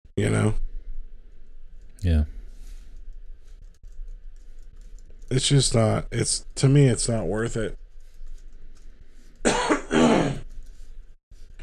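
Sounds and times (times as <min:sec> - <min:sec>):
speech: 0:00.2 - 0:00.7, 0:02.0 - 0:02.4, 0:05.3 - 0:07.8
person clearing their throat: 0:09.4 - 0:10.5
person coughing with harsh rasping coughs: 0:09.4 - 0:10.5.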